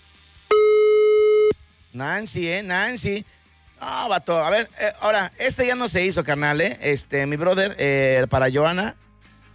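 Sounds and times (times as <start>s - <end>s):
telephone busy signal during an unanswered call: 0.5s - 1.6s
speech: 2.0s - 9.0s.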